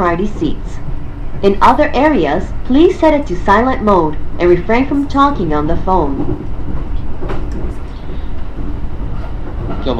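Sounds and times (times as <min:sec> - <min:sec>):
speech: 0:00.0 - 0:06.5
local commuter train rolling along the rails: 0:00.0 - 0:09.9
faint clatter: 0:06.1 - 0:09.9.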